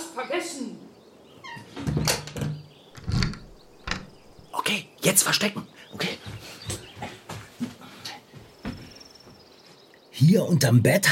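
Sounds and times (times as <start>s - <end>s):
speech: 0.2s - 0.9s, 5.0s - 6.2s, 10.2s - 11.1s
door creaking and shutting with a dull thud: 1.4s - 4.5s
lock turning with a sharp click: 2.0s - 4.5s.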